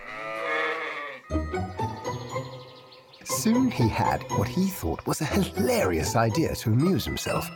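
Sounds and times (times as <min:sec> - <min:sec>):
sheep bleating: 0:00.0 - 0:01.3
speech: 0:03.4 - 0:07.5.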